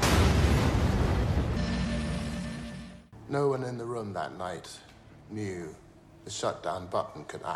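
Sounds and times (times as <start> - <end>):
nuclear reactor explosion with deep rumble: 0.0 - 2.1
speech: 3.3 - 7.5.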